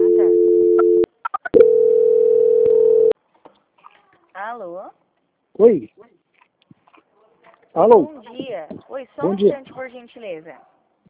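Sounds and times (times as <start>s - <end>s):
telephone call transfer tones: 0.0s - 3.2s
speech: 4.5s - 5.0s, 5.6s - 6.1s, 7.8s - 10.7s.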